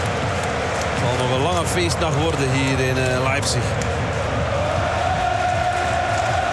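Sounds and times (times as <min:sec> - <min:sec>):
speech: 0:01.0 - 0:04.1
large crowd of football fans chanting in Leipzig: 0:04.1 - 0:06.5.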